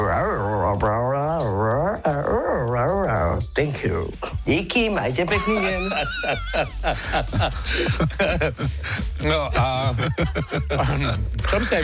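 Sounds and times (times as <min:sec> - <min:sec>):
person vocally imitating a dog with whines and yelps: 0:00.0 - 0:03.4
speech: 0:00.8 - 0:02.2, 0:03.6 - 0:11.8
laughter: 0:05.3 - 0:11.4.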